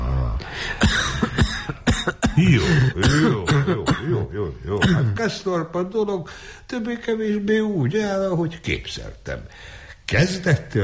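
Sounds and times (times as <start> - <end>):
speech: 0.7 - 1.0, 2.4 - 10.8
person coughing with rasping throaty bursts: 0.8 - 5.2.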